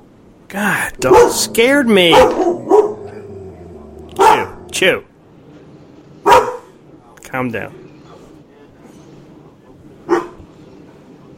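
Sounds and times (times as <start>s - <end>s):
speech: 0.5s - 2.9s, 4.8s - 5.1s, 7.3s - 7.8s
dog barking from a couch: 1.0s - 4.7s, 6.2s - 6.7s, 10.1s - 10.4s.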